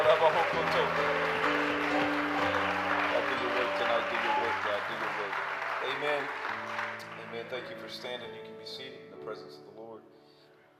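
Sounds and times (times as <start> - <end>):
church audience clapping during a worship service: 0.0 - 7.8.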